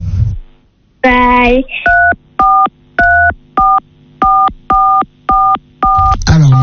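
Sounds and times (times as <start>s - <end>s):
speech: 1.5s - 1.9s
phone keypad tones from accidental key presses by a face: 1.8s - 6.6s.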